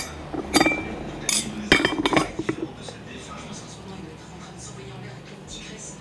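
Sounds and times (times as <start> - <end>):
dishes and cutlery clinking as the table is cleared: 0.0 - 3.0.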